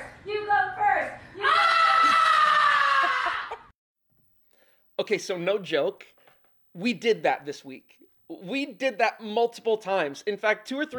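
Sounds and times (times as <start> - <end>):
parent and kids screaming together: 1.4 - 3.7
speech: 5.1 - 6.2, 6.8 - 10.9.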